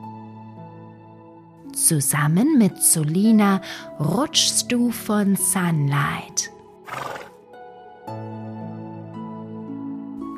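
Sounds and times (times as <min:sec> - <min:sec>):
speech: 0:01.8 - 0:07.2
stallion whinnying: 0:06.9 - 0:07.4.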